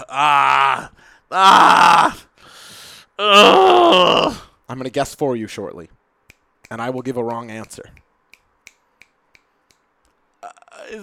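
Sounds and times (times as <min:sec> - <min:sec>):
speech: 0:00.0 - 0:02.2, 0:04.8 - 0:06.0, 0:06.7 - 0:08.0, 0:10.9 - 0:11.0
heavy labored breathing with groan-like exhales: 0:02.4 - 0:03.2.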